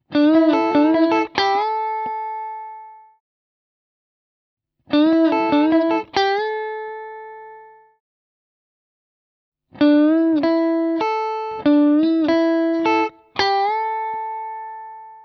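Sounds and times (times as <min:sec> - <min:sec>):
guitar bending lick: 0:00.1 - 0:03.0, 0:04.9 - 0:07.7, 0:09.8 - 0:15.2.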